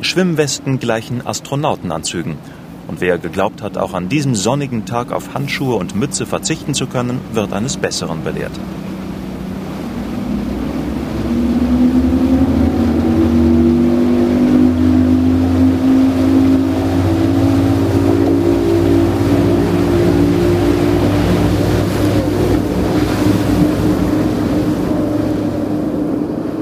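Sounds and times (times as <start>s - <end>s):
speech: 0.0s - 9.0s
high-speed inflatable Zodiac boat engine roaring over waves in a bay: 0.0s - 26.6s
wind whistling: 8.6s - 26.6s.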